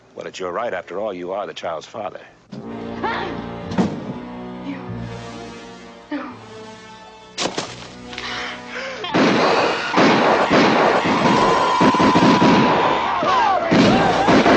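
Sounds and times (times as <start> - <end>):
speech: 0.2 - 3.4
gunfire: 9.1 - 14.5.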